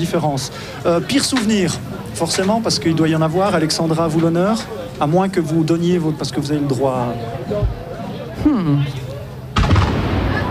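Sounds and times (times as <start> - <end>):
speech: 0.0 - 9.0
steady murmur of a crowd: 0.0 - 10.5
single cannon shot booming: 9.6 - 10.5.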